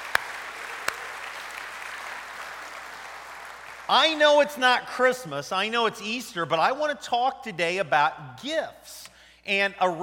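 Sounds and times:
sharp loud claps: 0:00.0 - 0:03.9
crowd applauding for children in fifth grade or under: 0:00.0 - 0:04.2
speech: 0:03.9 - 0:10.0.

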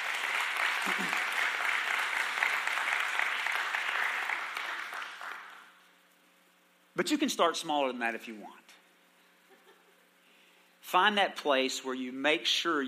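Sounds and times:
congregation applauding: 0:00.0 - 0:05.7
speech: 0:07.0 - 0:08.6, 0:10.9 - 0:12.8.

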